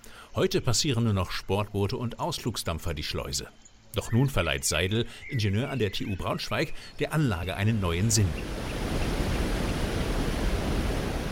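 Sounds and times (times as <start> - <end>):
speech: 0.4 - 8.9
river water rushing over a low weir: 7.8 - 11.3.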